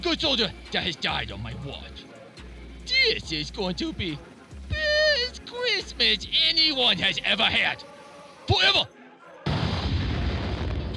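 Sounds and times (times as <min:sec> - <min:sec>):
speech: 0:00.0 - 0:02.1, 0:03.0 - 0:04.8, 0:05.7 - 0:07.9, 0:08.5 - 0:09.0
loud explosion: 0:09.5 - 0:10.9.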